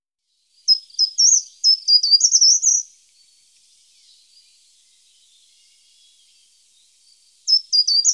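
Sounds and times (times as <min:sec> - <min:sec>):
short-toed treecreeper singing high thin phrases in Germany, Austria and Switzerland: 0:00.3 - 0:08.1.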